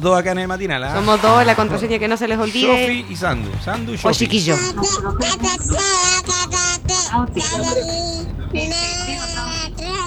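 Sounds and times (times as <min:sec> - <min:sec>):
speech: 0:00.0 - 0:09.6
laughter: 0:00.0 - 0:10.0
baby babbling and crying: 0:04.2 - 0:10.0.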